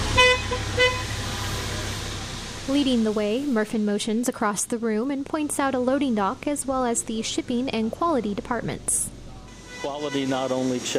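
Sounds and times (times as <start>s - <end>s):
forklift horn beeps at an intersection of aisles: 0.1s - 1.2s, 9.5s - 10.6s
speech: 2.7s - 9.1s, 9.8s - 10.9s.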